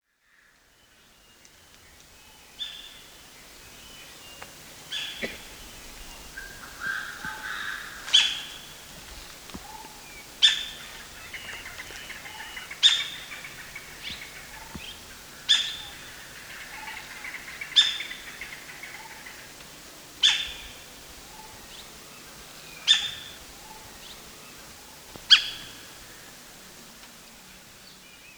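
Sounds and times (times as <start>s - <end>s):
streak-throated woodpecker: 4.4s - 26.4s.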